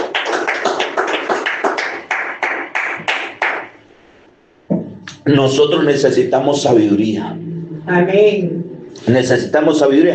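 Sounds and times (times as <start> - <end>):
crowd applauding: 0.0 - 3.7
speech: 5.3 - 10.1.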